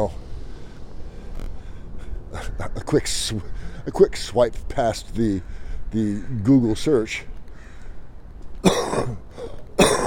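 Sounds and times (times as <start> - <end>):
quiet hiss: 0.0 - 9.8
speech: 2.6 - 7.3
sharp raspy coughs: 8.6 - 9.2, 9.8 - 10.0.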